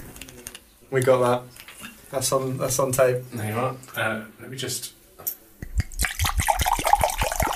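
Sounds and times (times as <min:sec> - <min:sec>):
speech: 0:00.9 - 0:05.0
drink glugging out of a bottle into a glass: 0:06.0 - 0:07.5.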